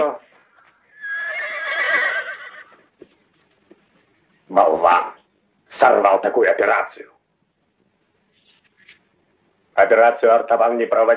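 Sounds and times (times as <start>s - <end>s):
horse neighing in a long quavering whinny: 0.9s - 2.9s
speech: 5.8s - 7.2s, 9.8s - 11.1s.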